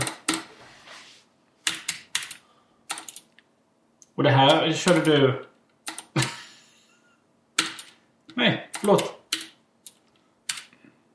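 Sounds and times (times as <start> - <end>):
keys being pressed on a keyboard: 0.0 - 0.5, 1.6 - 3.4, 4.4 - 5.2, 5.8 - 6.4, 7.6 - 8.0, 8.7 - 10.8
speech: 4.2 - 5.5, 8.8 - 9.1.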